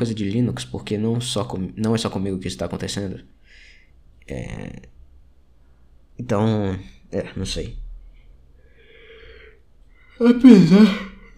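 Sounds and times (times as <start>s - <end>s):
speech: 0.0s - 3.4s, 4.3s - 5.0s, 6.2s - 7.8s, 10.2s - 11.3s
person yawning: 10.2s - 11.3s.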